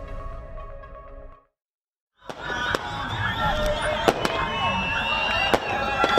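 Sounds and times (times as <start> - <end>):
crowd shouting and cheering in Mosul celebrating liberation: 2.2 - 6.1
dense crackling celebration fireworks: 2.2 - 6.1.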